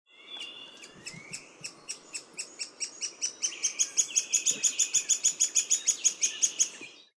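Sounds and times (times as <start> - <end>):
Anabacerthia variegaticeps calling: 0.1 - 7.0.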